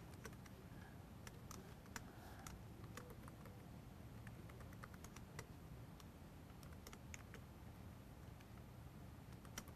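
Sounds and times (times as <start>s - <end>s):
low hum: 0.0s - 9.7s
password typed on computer keyboard: 0.1s - 0.6s, 1.2s - 3.6s, 4.2s - 5.5s, 6.5s - 7.4s, 9.3s - 9.7s.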